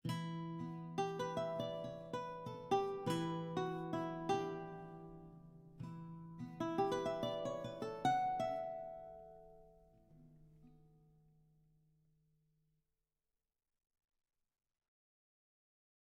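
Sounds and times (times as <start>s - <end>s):
baroque guitar from game audio: 0.0s - 11.2s.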